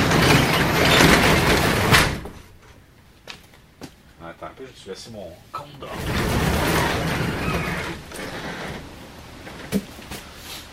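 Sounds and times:
sliding door scraping shut with a thud: 0.0s - 2.5s, 5.8s - 10.7s
speech: 4.6s - 8.5s.

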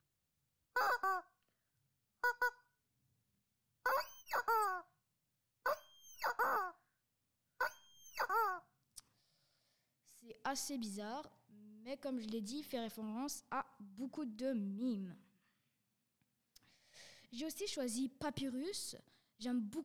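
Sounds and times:
rubber chicken toy squawking: 0.8s - 1.3s, 2.2s - 2.7s, 3.8s - 4.9s, 5.6s - 6.8s, 7.6s - 8.7s
speech: 10.2s - 15.2s, 17.3s - 19.8s.

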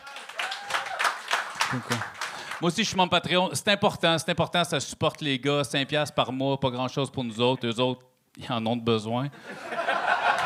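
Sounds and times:
crowd whooping and shouting in a hall: 0.0s - 1.2s
audience in a hall clapping: 0.0s - 2.8s, 10.2s - 10.4s
speech: 1.7s - 9.7s
laughter: 9.4s - 10.4s.

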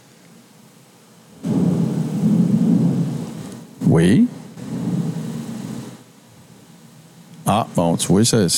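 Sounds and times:
deep thunder rumbling through a storm: 1.4s - 6.1s
speech: 3.9s - 4.4s, 7.5s - 8.5s.

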